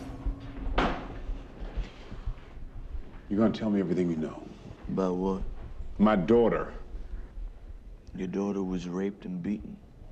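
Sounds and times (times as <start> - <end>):
door closing with a thud: 0.0 - 1.9
faint low rumbling: 0.0 - 10.0
speech: 3.3 - 6.8, 8.2 - 9.9.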